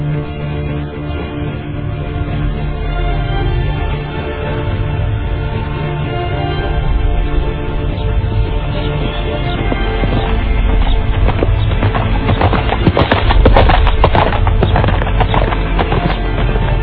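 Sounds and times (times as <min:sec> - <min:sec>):
low rumbling background: 0:00.0 - 0:16.8
ridden horse hooves clip-clopping: 0:08.8 - 0:16.8.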